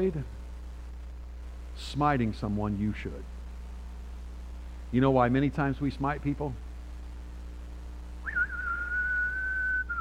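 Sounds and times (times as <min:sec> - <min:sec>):
speech: 0:00.0 - 0:00.4, 0:01.8 - 0:03.4, 0:04.9 - 0:06.6
person whistling a Western showdown-style tune: 0:08.3 - 0:09.9.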